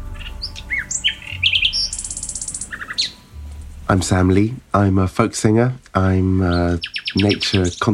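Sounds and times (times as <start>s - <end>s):
bird singing: 0.0s - 4.4s, 6.0s - 7.9s
speech: 3.9s - 7.9s.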